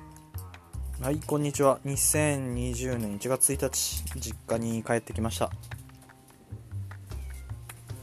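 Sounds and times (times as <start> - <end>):
speech: 1.0 - 5.8
cat meowing: 7.1 - 8.0.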